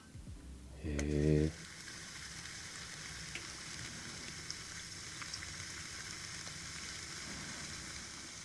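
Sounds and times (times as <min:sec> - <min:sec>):
carbonated water fizzing over ice and syrup in an iced coffee ice pouch: 0:00.9 - 0:08.4.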